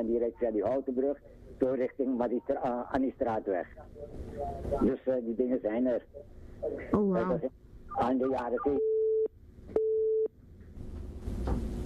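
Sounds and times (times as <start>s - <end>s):
speech: 0.0s - 8.9s
telephone busy tone after a dropped call: 8.6s - 10.3s.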